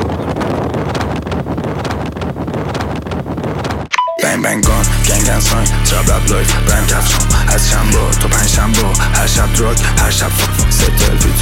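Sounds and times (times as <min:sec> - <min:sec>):
wind buffeting the microphone while riding a motorbike: 0:00.0 - 0:03.9
speech: 0:04.4 - 0:11.4.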